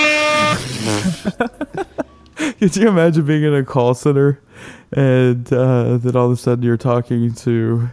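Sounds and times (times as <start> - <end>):
loud brassy air horn blast: 0.0 - 1.3
laughter: 0.7 - 2.2
speech: 2.6 - 7.9.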